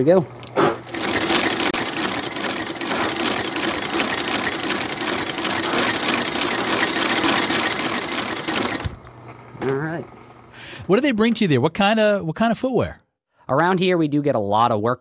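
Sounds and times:
speech: 0.0 - 0.4, 10.9 - 14.9
shoe repair sewing machine motor running: 0.7 - 9.0.

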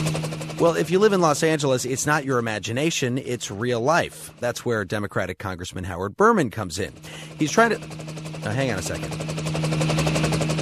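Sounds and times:
helicopter low engine drone: 0.0 - 4.8, 6.7 - 10.6
helicopter rotor thudding over a residential neighborhood in Los Angeles: 0.0 - 4.8, 6.6 - 10.6
voice-like tonal fragments: 0.6 - 4.8, 6.8 - 10.6
speech: 0.6 - 9.5.

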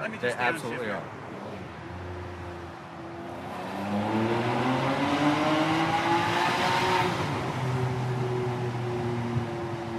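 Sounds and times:
speech: 0.0 - 1.2, 3.9 - 4.4
car engine revving while accelerating: 1.3 - 9.1.

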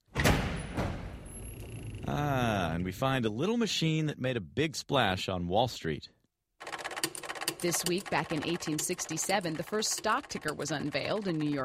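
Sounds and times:
heavy vault door swinging open sound effect: 0.0 - 2.2
speech: 2.1 - 6.2, 7.6 - 11.6.

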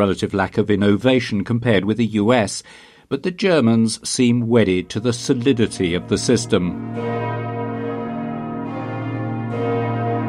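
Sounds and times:
speech: 0.0 - 7.4
church bells ringing: 4.6 - 10.2.

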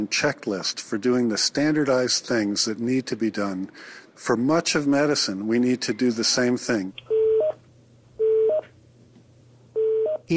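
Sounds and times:
speech: 0.0 - 7.2
low steady hum: 0.0 - 10.3
touch-tone telephone dialing by hospital staff: 7.1 - 7.6, 8.2 - 8.6, 9.8 - 10.2.

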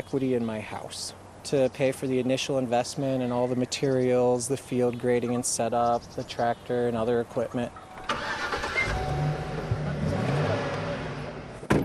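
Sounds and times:
speech: 0.0 - 7.8
rented moving truck engine loaded with sedum rolls rumbling: 7.7 - 11.8.

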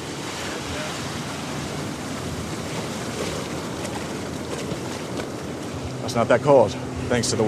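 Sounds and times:
ocean surf washing while paddling out: 0.0 - 7.4
water churning: 0.0 - 7.4
wind buffeting the microphone: 0.0 - 7.4
speech: 6.1 - 7.4.

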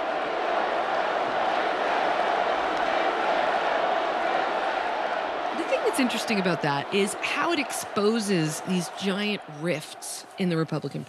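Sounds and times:
large convention crowd roaring: 0.0 - 10.6
speech: 6.0 - 11.0.

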